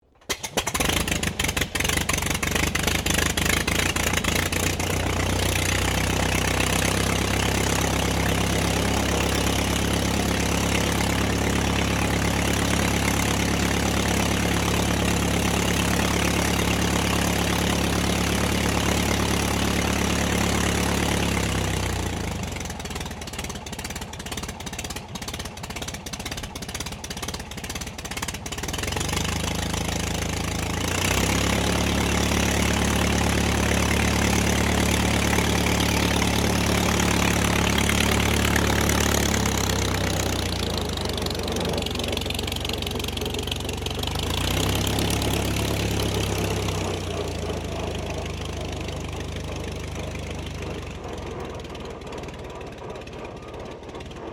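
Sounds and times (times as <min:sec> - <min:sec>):
RAAF de Havilland DH82A Tiger Moth starting up: 0:00.0 - 0:54.3.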